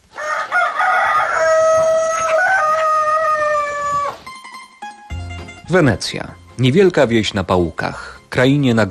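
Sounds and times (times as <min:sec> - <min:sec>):
rooster crowing on a poultry farm in a small Polish village: 0:00.1 - 0:04.3
speech: 0:05.7 - 0:08.8.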